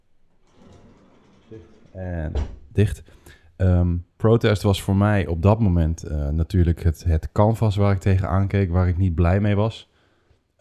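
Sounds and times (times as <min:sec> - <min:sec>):
door swung shut with a soft low thud: 0:00.5 - 0:02.8
speech: 0:01.5 - 0:09.9.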